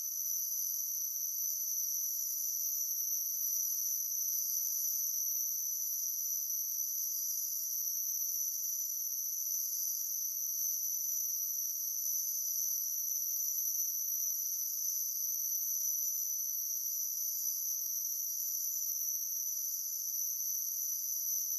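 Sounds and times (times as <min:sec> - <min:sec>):
insect high-pitched chirping: 0:00.0 - 0:21.5.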